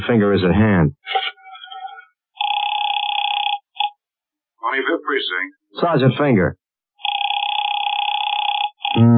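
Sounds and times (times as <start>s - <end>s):
speech: 0.0s - 1.2s, 4.7s - 6.6s
telephone bell ringing: 2.4s - 3.7s, 7.0s - 9.0s.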